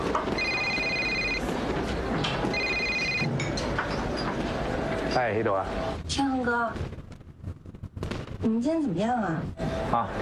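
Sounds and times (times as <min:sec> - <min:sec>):
noisy rumble: 0:00.0 - 0:10.2
phone ringing in electronic trills: 0:00.2 - 0:01.7, 0:02.4 - 0:03.3
speech: 0:05.2 - 0:07.0, 0:08.4 - 0:10.2.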